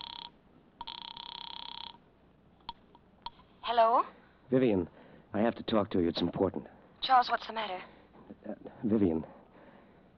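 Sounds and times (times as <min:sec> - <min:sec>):
telephone bell ringing with a fast buzzing trill: 0:00.0 - 0:02.0
speech: 0:03.7 - 0:08.0, 0:08.8 - 0:09.4.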